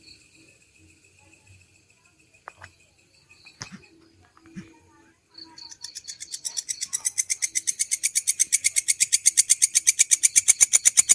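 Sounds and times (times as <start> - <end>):
canary trilling song: 5.5 - 11.1.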